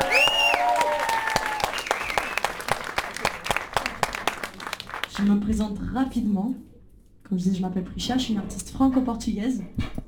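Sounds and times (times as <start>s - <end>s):
audience cheers and whoops: 0.0s - 2.5s
audience applause: 0.0s - 5.2s
speech: 5.2s - 6.7s, 7.3s - 10.0s.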